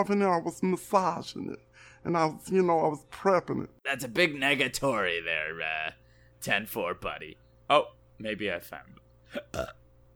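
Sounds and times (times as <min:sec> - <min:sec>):
speech: 0:00.0 - 0:09.8
short low throaty burp: 0:09.3 - 0:09.9.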